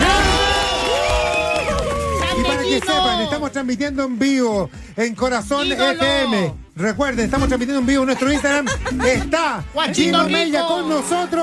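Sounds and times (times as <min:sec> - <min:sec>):
audience applause: 0:00.0 - 0:03.4
audience cheering with shouts and whoops: 0:00.0 - 0:03.5
speech: 0:02.7 - 0:11.4
laughter: 0:07.9 - 0:09.6.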